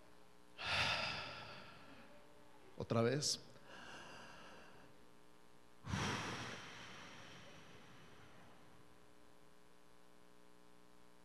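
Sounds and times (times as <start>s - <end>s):
person breathing in during a spoken prayer: 0.6s - 2.1s, 3.6s - 4.9s, 5.8s - 8.7s
speech: 2.8s - 3.5s.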